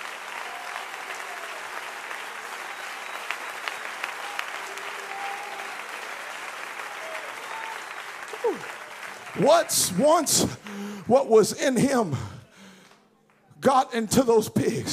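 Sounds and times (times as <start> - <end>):
church audience clapping hands loudly: 0.0 - 11.5
speech: 8.4 - 8.8, 9.4 - 12.4, 13.6 - 14.9.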